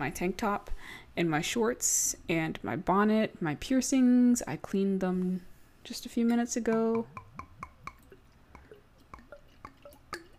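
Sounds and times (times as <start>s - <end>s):
speech: 0.0s - 7.2s
burdock root tonic glugging into a glass: 7.1s - 10.3s.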